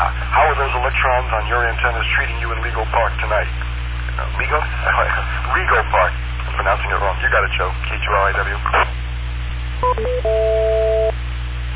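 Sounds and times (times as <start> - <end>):
low hum: 0.0 - 11.7
speech: 0.7 - 8.9, 9.9 - 10.6
electronic telephone dialing beeps: 9.8 - 11.1
steady two-tone telephone signal: 9.8 - 11.1.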